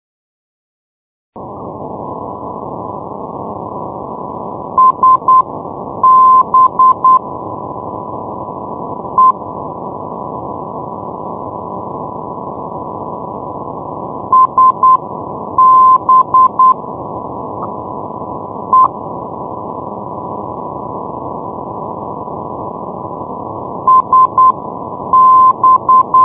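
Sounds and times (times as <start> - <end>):
non-directional radio beacon morse signal: 4.8 - 7.2, 9.2 - 9.4, 14.3 - 15.0, 15.6 - 16.8, 18.7 - 19.0, 23.9 - 26.2.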